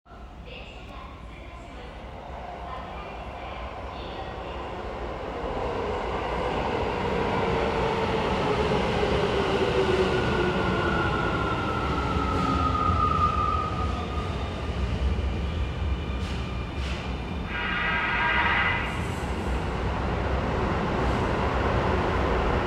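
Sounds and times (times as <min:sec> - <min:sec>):
Keio train: 0:00.1 - 0:22.6.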